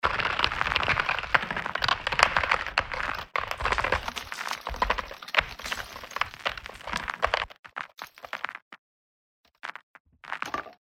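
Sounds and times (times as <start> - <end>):
ice breaking: 0.0 - 8.6.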